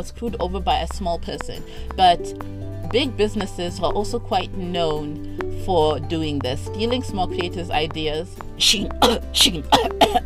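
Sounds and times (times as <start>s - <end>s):
speech: 0.0s - 10.2s
person coughing and clearing throat: 9.0s - 10.2s.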